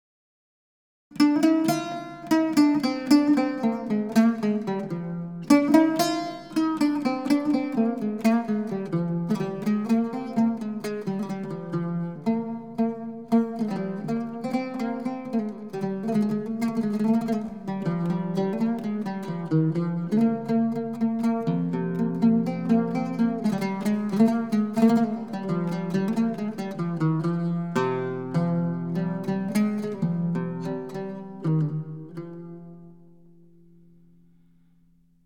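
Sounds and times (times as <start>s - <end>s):
opening of a piece in maqam rast: 1.1s - 35.2s.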